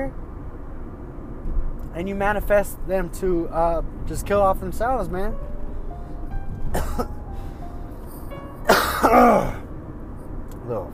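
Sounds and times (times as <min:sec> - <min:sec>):
speech: 0:01.9 - 0:05.5, 0:09.1 - 0:09.6, 0:10.7 - 0:10.9
person coughing harshly: 0:06.8 - 0:07.2, 0:08.7 - 0:09.6
rough throat clearing: 0:08.7 - 0:09.6.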